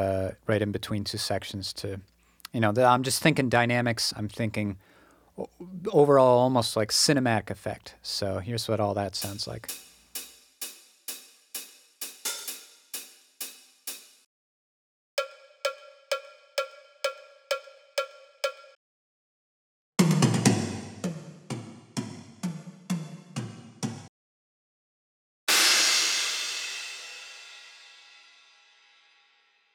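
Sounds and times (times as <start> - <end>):
speech: 0.0 - 9.8
artificial robotic programmed drum pattern: 9.2 - 14.2, 15.2 - 18.8, 20.0 - 24.1
crash cymbal: 9.7 - 14.3, 25.5 - 29.5
ringing cowbell-like tonal drum hits: 15.2 - 18.8.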